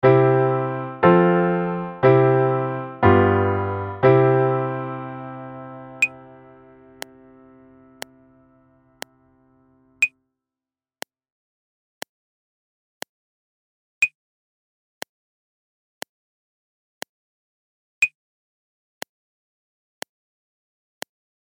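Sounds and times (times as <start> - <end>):
C major music in 4 4 without piano: 0.0 - 9.9.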